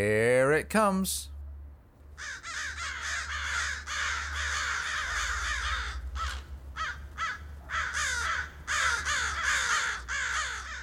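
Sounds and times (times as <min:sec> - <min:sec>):
speech: 0:00.0 - 0:01.3
crows cawing: 0:02.2 - 0:10.8.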